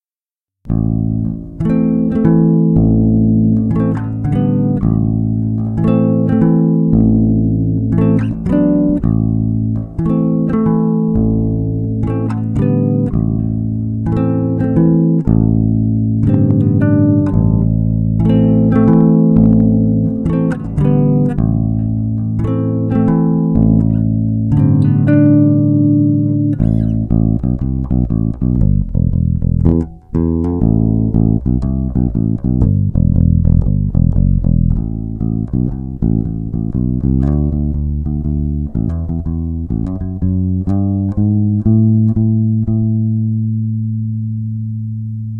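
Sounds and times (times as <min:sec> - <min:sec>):
bass sound sample: 0:00.6 - 0:45.3.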